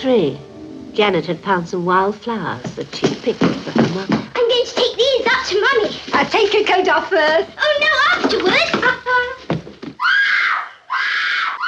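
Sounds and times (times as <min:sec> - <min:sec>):
speech: 0:00.0 - 0:09.4
sounds: 0:01.0 - 0:10.0
11-year-old girl screaming in horror at her father's murdered body: 0:10.0 - 0:11.6.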